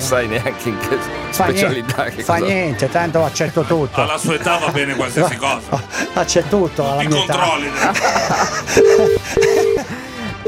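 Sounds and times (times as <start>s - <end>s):
speech: 0.1s - 9.5s
laughter: 3.6s - 10.2s
telephone ringing tone on an outgoing call: 8.8s - 10.4s.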